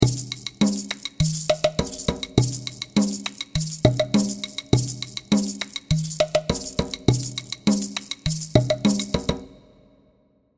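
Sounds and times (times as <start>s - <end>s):
tiki percussion kit: 0.0s - 9.7s.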